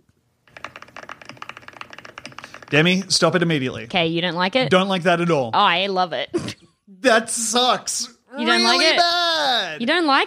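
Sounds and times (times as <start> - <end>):
rapid typing on a computer keyboard: 0.5 - 2.8
speech: 2.7 - 10.2.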